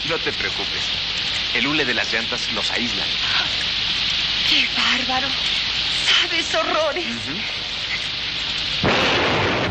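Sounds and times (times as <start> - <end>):
speech: 0.0 - 3.7, 4.5 - 7.8
rain hiss during a mountain thunderstorm: 0.0 - 9.6
thunder rumbling during a thunderstorm in the mountains: 8.7 - 9.6.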